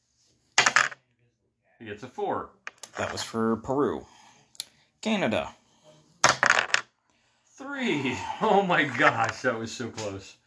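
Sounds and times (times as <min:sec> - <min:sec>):
dice rolling across a hard surface: 0:00.6 - 0:01.0, 0:06.2 - 0:06.8
speech: 0:01.8 - 0:04.2, 0:05.0 - 0:05.6, 0:07.8 - 0:10.4
laughter: 0:07.8 - 0:09.3.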